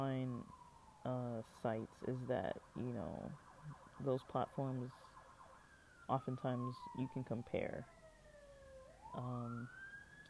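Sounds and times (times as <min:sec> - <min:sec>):
speech: 0:00.0 - 0:05.1, 0:06.1 - 0:08.0, 0:09.1 - 0:09.8
emergency vehicle siren wailing: 0:00.0 - 0:10.2.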